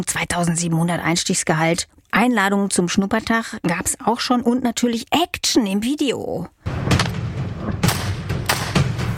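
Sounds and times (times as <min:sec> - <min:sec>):
speech: 0:00.0 - 0:06.6
sharp gunshots from soldiers training shooting skills: 0:06.8 - 0:09.0.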